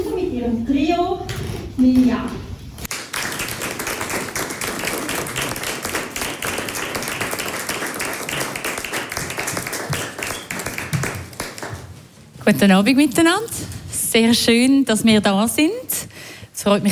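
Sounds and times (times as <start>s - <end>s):
speech: 0.4s - 2.4s, 12.5s - 16.9s
concert audience applauding a trio's performance at a villa: 2.9s - 11.8s.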